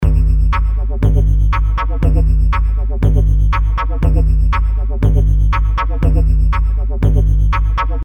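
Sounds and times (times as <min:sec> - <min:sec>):
weird lab loop: 0:00.0 - 0:08.0.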